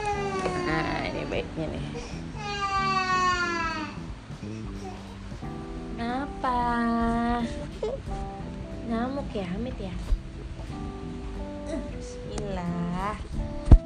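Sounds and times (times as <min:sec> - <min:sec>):
baby crying loudly: 0:00.0 - 0:01.3, 0:01.9 - 0:04.0, 0:04.7 - 0:05.2, 0:07.4 - 0:08.1
faint activity: 0:00.0 - 0:13.8
steady low hum: 0:00.1 - 0:13.8
speech: 0:00.4 - 0:02.6, 0:08.9 - 0:10.2.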